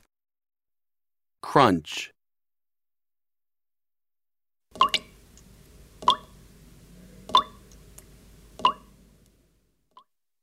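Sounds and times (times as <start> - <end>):
speech: 1.5 - 2.1
water dripping: 4.7 - 9.4.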